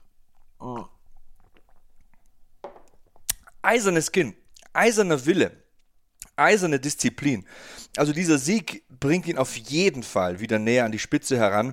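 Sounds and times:
person sipping coffee from a cup: 0:00.3 - 0:02.4
speech: 0:03.7 - 0:05.6, 0:06.4 - 0:11.7.

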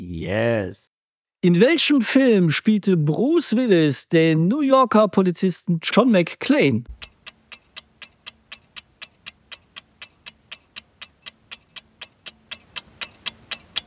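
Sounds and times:
speech: 0:00.1 - 0:07.0
clock ticking as a quiz countdown timer: 0:06.8 - 0:13.8.

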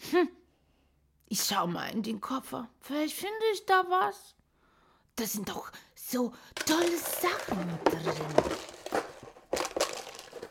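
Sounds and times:
speech: 0:00.2 - 0:00.4, 0:01.3 - 0:04.4, 0:05.2 - 0:09.1
plastic bag of cookies crinkling: 0:06.6 - 0:10.4.

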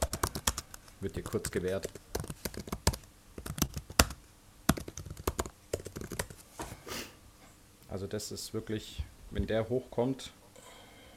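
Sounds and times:
typing on a computer keyboard: 0:00.0 - 0:06.4
speech: 0:01.0 - 0:02.7, 0:07.9 - 0:10.4.

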